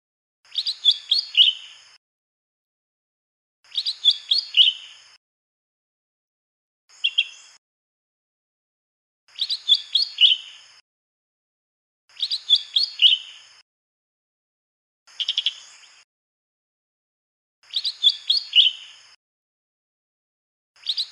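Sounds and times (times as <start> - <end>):
Lesser green leafbird song of rapid chirping phrases with slurred notes in the wild: 0.5 - 2.0, 3.7 - 5.2, 6.9 - 7.6, 9.3 - 10.8, 12.1 - 13.6, 15.1 - 16.0, 17.6 - 19.2, 20.8 - 21.0.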